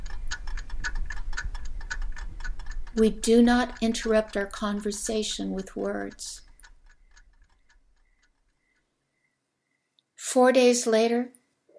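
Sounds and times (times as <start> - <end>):
low hum: 0.0 - 8.9
several clocks ticking in unison: 0.0 - 8.9
speech: 3.0 - 6.4, 10.3 - 11.4.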